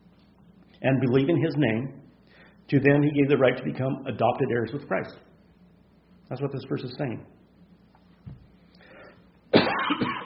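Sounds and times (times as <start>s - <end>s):
speech: 0.8s - 2.0s, 2.7s - 5.3s, 6.3s - 7.4s
loud harsh rough cough: 9.5s - 10.2s.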